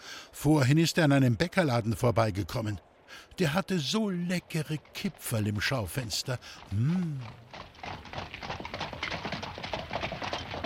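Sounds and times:
speech: 0.4s - 7.6s
horse hooves clopping pulling a horse-drawn cart: 4.0s - 10.6s.

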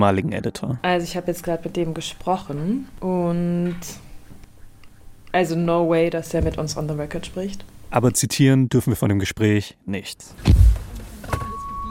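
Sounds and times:
speech: 0.0s - 4.1s, 5.3s - 10.8s
car door closing thunk: 10.4s - 11.5s
steady high electronic beep from a car: 11.4s - 11.9s.

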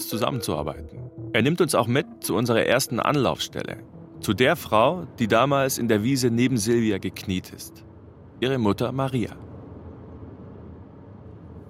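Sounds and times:
speech: 0.1s - 9.4s
car engine and road drone on the way to a suburb of Salzburg: 2.3s - 11.6s.

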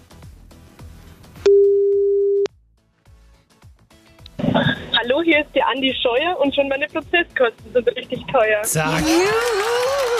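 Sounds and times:
steady telephone tone as an outgoing call is placed: 1.5s - 2.5s
speech: 5.1s - 10.1s.

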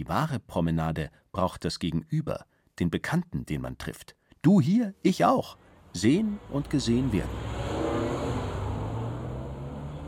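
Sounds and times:
speech: 0.0s - 7.6s
luxury car engine revving: 5.8s - 10.0s.

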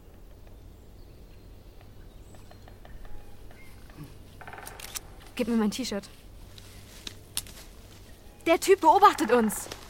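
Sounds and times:
sharp mechanical clicks: 4.4s - 5.1s
speech: 5.4s - 6.2s, 8.5s - 9.8s.

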